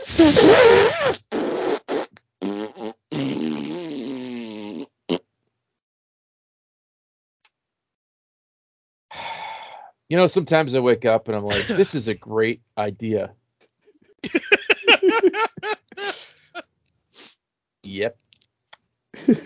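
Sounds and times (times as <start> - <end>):
loud sputtering farts: 0.0 - 5.3
speech: 10.1 - 13.4, 17.8 - 18.2
laughter: 11.5 - 11.9, 14.2 - 16.6, 19.2 - 19.4.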